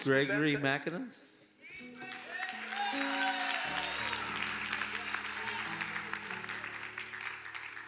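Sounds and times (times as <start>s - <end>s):
speech: 0.0s - 2.1s
audience clapping and cheering: 1.9s - 7.8s.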